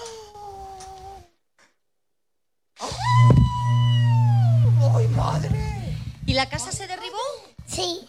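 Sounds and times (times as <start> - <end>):
child wailing imitating a wolf: 0.0 - 1.4, 2.8 - 6.0
child's breathy puff imitating a wolf blowing: 2.8 - 6.3
speech: 6.4 - 7.2.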